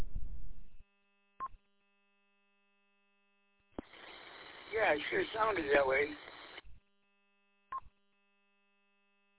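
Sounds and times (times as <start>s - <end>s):
buzzy static over a phone line: 3.8s - 6.8s
speech: 4.8s - 6.3s.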